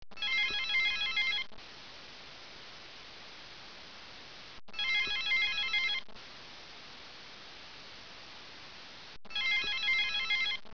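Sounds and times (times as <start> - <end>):
telephone: 0.2 - 1.5, 4.7 - 6.1, 9.3 - 10.7.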